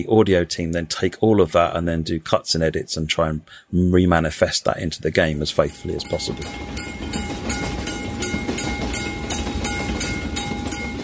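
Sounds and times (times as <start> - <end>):
speech: 0.0 - 7.0
train wheels clickety-clack over rail joints: 5.2 - 11.0
deep rumbling train carriage: 5.5 - 11.0.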